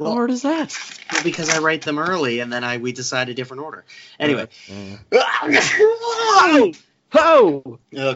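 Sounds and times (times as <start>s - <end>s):
speech: 0.0s - 8.1s
person sneezing: 4.7s - 6.0s.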